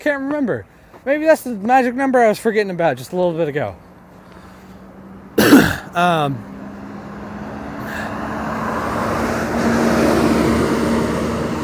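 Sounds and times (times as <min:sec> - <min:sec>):
speech: 0:00.0 - 0:03.9, 0:06.0 - 0:06.5
heavy bus rumbling past outside: 0:03.9 - 0:11.6
person clearing throat: 0:05.4 - 0:06.3.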